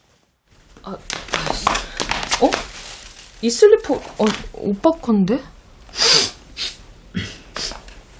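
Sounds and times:
speech: 0:00.8 - 0:01.7, 0:02.4 - 0:02.7, 0:03.4 - 0:05.5
congested nasal sniffing snort from rhinitis: 0:05.9 - 0:07.8.

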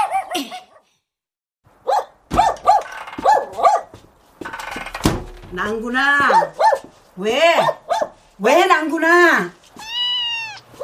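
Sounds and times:
speech: 0:00.4 - 0:00.6, 0:05.5 - 0:06.6, 0:07.2 - 0:07.8, 0:08.4 - 0:09.6
dog barking with growly edges: 0:01.8 - 0:04.0, 0:06.3 - 0:06.9, 0:07.6 - 0:08.2.

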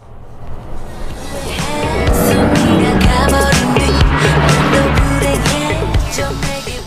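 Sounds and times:
car passing by on a road: 0:00.0 - 0:06.8
road noise: 0:00.0 - 0:06.8
booming bass-heavy music from a car: 0:01.6 - 0:06.8.

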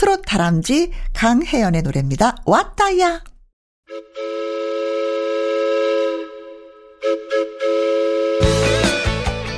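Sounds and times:
speech: 0:00.0 - 0:03.3, 0:03.9 - 0:04.6
steam train whistle: 0:03.9 - 0:09.1.

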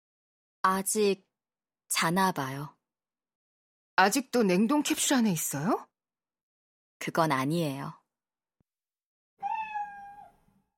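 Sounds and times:
speech: 0:00.6 - 0:01.3, 0:01.9 - 0:02.8, 0:04.0 - 0:05.9, 0:07.0 - 0:08.0
black cat meowing in the living room: 0:09.4 - 0:10.5.

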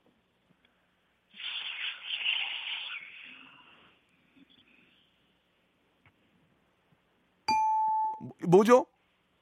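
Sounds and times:
person vocally imitating an airplane taking off: 0:01.4 - 0:03.9
bright sustained electronic ding: 0:07.5 - 0:08.4
speech: 0:08.2 - 0:08.9.

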